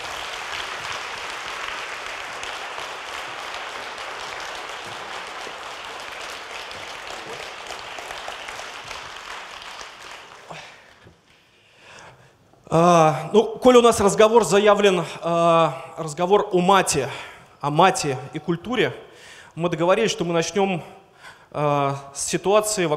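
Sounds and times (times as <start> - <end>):
crowd applauding: 0.0 - 11.1
speech: 12.7 - 22.9.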